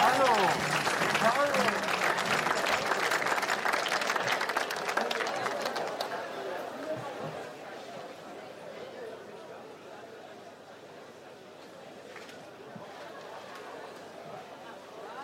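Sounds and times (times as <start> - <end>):
audience clapping: 0.0 - 6.6
crowd cheering: 0.0 - 7.1
crowd chatter: 0.0 - 15.2.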